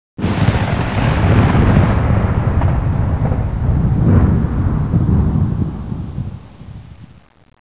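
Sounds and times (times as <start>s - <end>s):
thunder: 0.2s - 7.4s.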